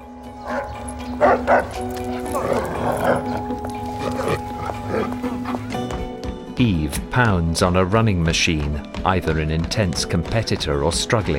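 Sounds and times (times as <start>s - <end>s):
big dog barking aggressively at a woman walking past: 0.4s - 5.7s
speech: 1.2s - 2.5s, 6.6s - 11.3s.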